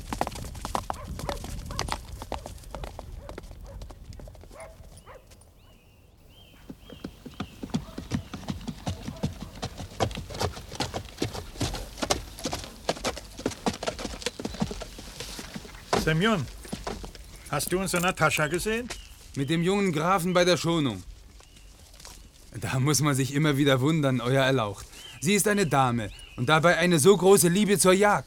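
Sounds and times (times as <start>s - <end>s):
horses' hooves clip-clopping as riders set off on a wolf hunt: 0.0s - 5.7s, 6.3s - 19.9s, 20.8s - 22.5s
speech: 16.1s - 16.6s, 17.5s - 21.1s, 22.6s - 28.2s.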